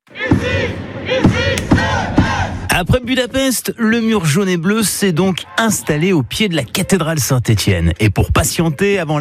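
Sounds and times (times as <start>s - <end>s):
crowd of supporters chanting and cheering at a town hall square celebration: 0.0s - 3.0s, 5.0s - 6.5s
speech: 2.8s - 9.1s.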